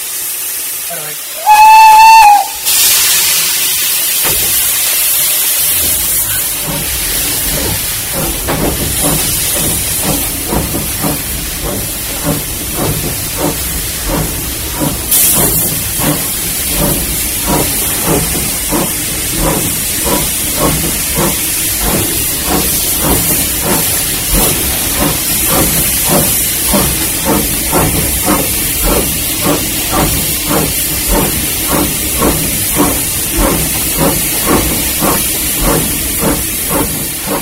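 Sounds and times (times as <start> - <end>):
steam locomotive hissing steam: 0.0 - 37.4
speech: 0.9 - 1.6
steam locomotive whistle blast: 1.4 - 3.1
steam locomotive chuffing: 3.4 - 37.4.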